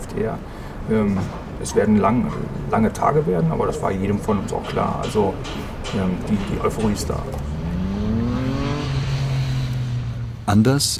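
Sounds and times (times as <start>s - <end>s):
road traffic roaring below a rooftop terrace in Vilnius: 0.0s - 10.9s
speech: 0.2s - 7.6s, 10.5s - 10.9s
engine rising in pitch in road traffic: 7.3s - 10.5s.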